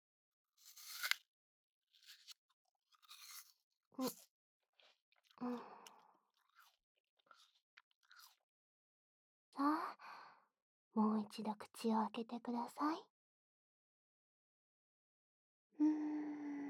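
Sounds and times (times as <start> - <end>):
crunchy chewing of a bite of food: 3.0 - 8.4
speech: 4.0 - 4.2, 5.4 - 5.7, 11.0 - 13.1, 15.8 - 16.5.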